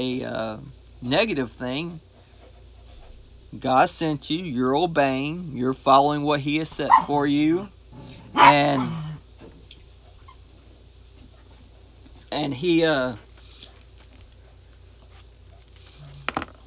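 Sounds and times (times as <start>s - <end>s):
speech: 0.0s - 2.1s, 3.5s - 9.0s, 12.3s - 13.2s
small dog giving drawn-out yappy barks: 6.8s - 7.2s, 8.3s - 9.0s.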